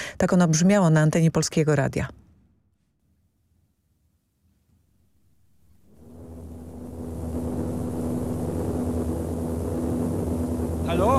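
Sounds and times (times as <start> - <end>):
speech: 0.2 - 2.2, 10.9 - 11.1
aircraft cabin engine drone aboard a 1954 expedition plane over Suwałki: 5.3 - 11.1.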